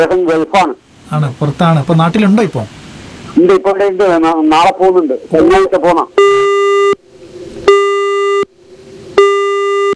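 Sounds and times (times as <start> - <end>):
speech: 0.0 - 2.8, 3.4 - 6.5
telephone busy tone after a caller's line was cut off: 6.2 - 7.0, 7.7 - 8.5, 9.2 - 9.9.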